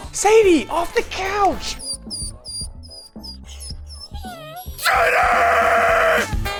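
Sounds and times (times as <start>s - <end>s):
speech: 0.2s - 1.8s, 4.9s - 5.6s
female dog whimpering in high-pitched gliding whines: 1.8s - 4.8s
person shouting loudly: 4.8s - 6.3s.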